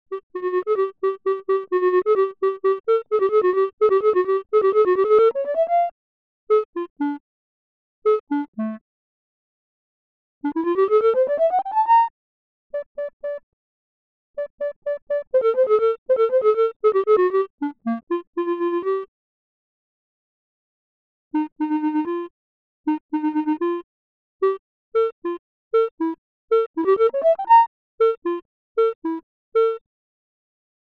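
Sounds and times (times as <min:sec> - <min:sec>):
clarinet synth: 0:00.1 - 0:05.9, 0:06.5 - 0:07.2, 0:08.0 - 0:08.8, 0:10.4 - 0:12.1, 0:12.7 - 0:13.4, 0:14.4 - 0:19.1, 0:21.3 - 0:22.3, 0:22.9 - 0:29.8.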